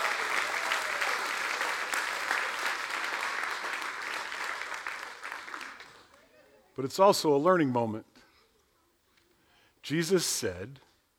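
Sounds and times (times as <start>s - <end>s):
large audience clapping: 0.0s - 6.3s
speech: 6.8s - 8.1s, 9.9s - 10.9s.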